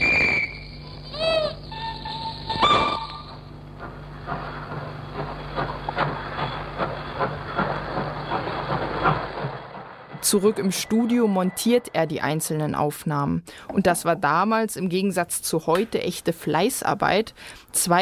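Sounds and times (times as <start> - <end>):
train whistle blasts at the Gare de Batignolles in Paris: 0.0 - 3.5
train wheels clattering on rails at the Gare de Batignolles in Paris: 3.2 - 11.1
speech: 10.3 - 18.0.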